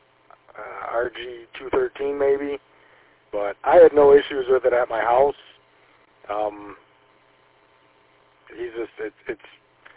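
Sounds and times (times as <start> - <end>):
thin band-limited hiss of radio static: 0.0 - 6.9, 8.4 - 9.9
steady low electrical hum: 0.0 - 9.9
speech: 1.0 - 5.5, 6.2 - 6.8, 8.5 - 9.6.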